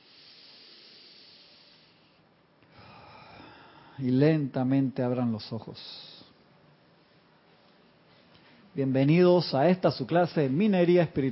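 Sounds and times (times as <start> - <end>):
long deep breath drawn in: 0.0 - 4.0
speech: 4.0 - 6.1, 8.8 - 11.3.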